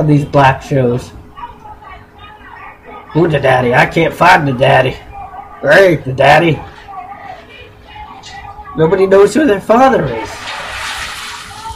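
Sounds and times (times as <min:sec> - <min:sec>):
speech: 0:00.0 - 0:01.2, 0:03.1 - 0:06.7, 0:08.8 - 0:10.5
pasta pouring into a pot of water: 0:10.2 - 0:11.7.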